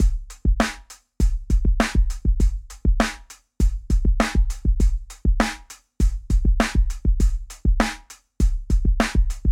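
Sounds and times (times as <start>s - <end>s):
drums: 0.0s - 9.5s.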